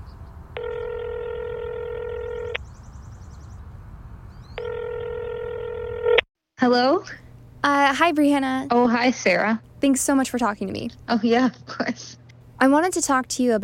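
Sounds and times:
telephone ringback tones: 0.6 - 2.6, 4.6 - 6.2
speech: 6.6 - 13.6.

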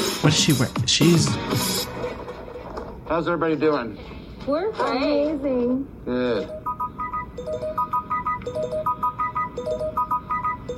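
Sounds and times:
speech: 0.2 - 2.0, 3.1 - 6.6
phone ringtone for an incoming call: 6.2 - 10.7.

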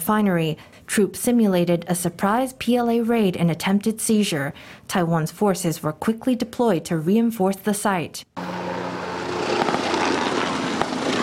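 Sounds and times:
speech: 0.1 - 8.5
military helicopter flying overhead: 8.4 - 11.2.

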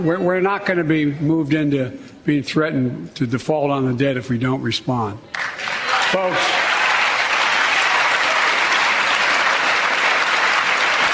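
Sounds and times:
speech: 0.0 - 5.4, 6.1 - 6.6
Democrats applauding after a political speech: 5.3 - 11.1.

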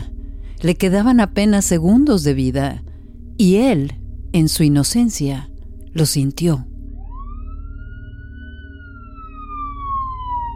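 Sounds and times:
speech: 0.6 - 6.7
police patrol car siren passing: 6.9 - 10.5.

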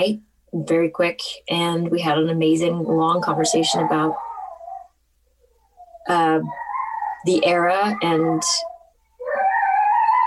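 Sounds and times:
speech: 0.0 - 4.3, 6.0 - 6.6, 7.2 - 8.7
dog whining: 3.2 - 10.2.

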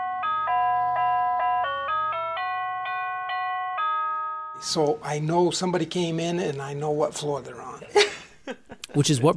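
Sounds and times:
musical doorbell chiming an electronic melody: 0.0 - 4.8
speech: 4.6 - 9.3.

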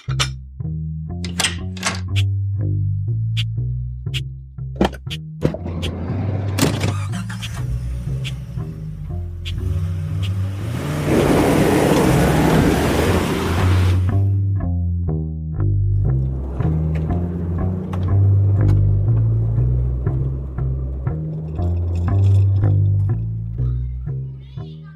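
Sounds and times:
music: 0.0 - 10.4, 11.1 - 24.9
car engine starting and revving as the car pulls away: 4.6 - 14.6, 15.7 - 23.6.

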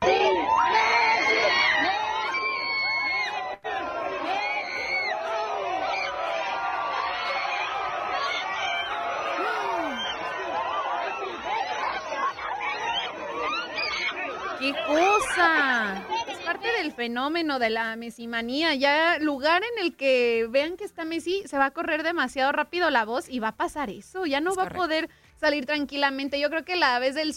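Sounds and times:
cheers and whoops from a crowd of fans: 0.0 - 16.5
dense crowd of fans screaming and shrieking in euphoric excitement: 0.0 - 17.0
speech: 16.8 - 27.3.

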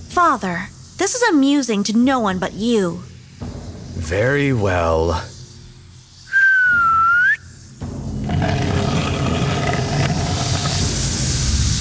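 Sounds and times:
speech: 0.2 - 3.1, 4.1 - 5.3
single short human whistle: 6.3 - 7.5
continuous broad rumbling grinding noise: 8.2 - 11.7.

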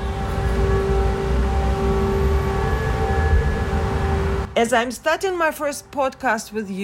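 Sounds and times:
air raid siren wailing in Odessa Ukraine: 0.0 - 4.6
speech: 4.6 - 6.8.

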